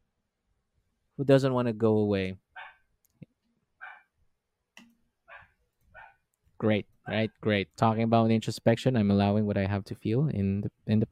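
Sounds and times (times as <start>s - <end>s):
speech: 1.2s - 2.4s, 6.6s - 11.1s
dog barking: 2.6s - 2.8s, 3.8s - 4.1s, 5.3s - 6.2s.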